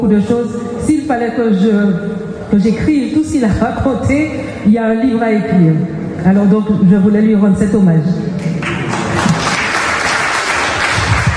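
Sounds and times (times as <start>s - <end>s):
speech: 0.0s - 8.2s
audience applause in an assembly: 8.6s - 11.3s.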